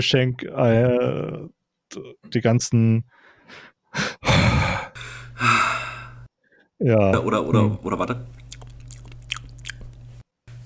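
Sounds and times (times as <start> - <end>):
speech: 0.0 - 4.7, 6.8 - 8.4
wet mouth smacking and chewing: 8.3 - 10.0.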